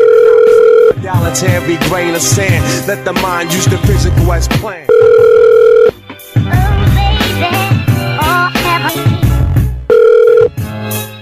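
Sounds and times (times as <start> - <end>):
telephone dial tone after a hang-up: 0.0 - 1.0, 4.9 - 6.0, 9.9 - 10.5
music with a beat: 0.4 - 11.2
speech: 1.3 - 5.2.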